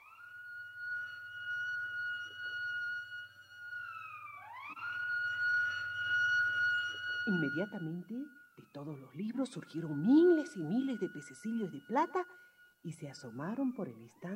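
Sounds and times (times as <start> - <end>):
loud alarm siren wailing: 0.0 - 14.3
low rumbling hum: 3.3 - 14.3
speech: 7.3 - 14.3.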